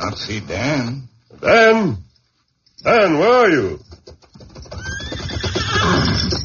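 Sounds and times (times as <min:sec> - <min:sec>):
speech: 0:00.0 - 0:02.1, 0:02.8 - 0:03.9
saddled sweating horse neighing after running hard: 0:04.7 - 0:06.4.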